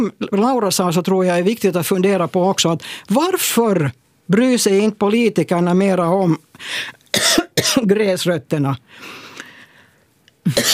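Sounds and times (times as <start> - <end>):
speech: 0.0 - 9.2, 10.4 - 10.7
person coughing: 7.1 - 7.9, 10.4 - 10.7.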